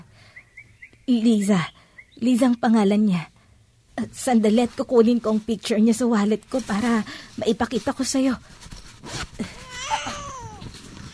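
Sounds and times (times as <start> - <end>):
steady noise: 0.0 - 11.1
speech: 1.1 - 3.3, 4.0 - 9.6
baby crying in a thin wavering wail: 9.5 - 11.1.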